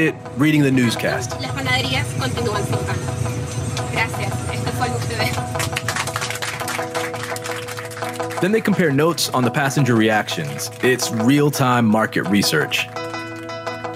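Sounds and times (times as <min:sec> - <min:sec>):
speech: 0:00.0 - 0:05.4, 0:08.4 - 0:13.0
heavy bus engine rumbling as the bus pulls away: 0:01.2 - 0:07.0.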